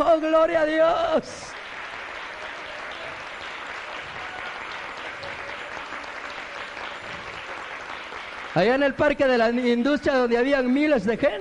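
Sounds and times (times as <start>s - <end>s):
speech: 0.2s - 1.6s, 8.6s - 11.3s
large crowd applauding loudly: 1.4s - 9.8s.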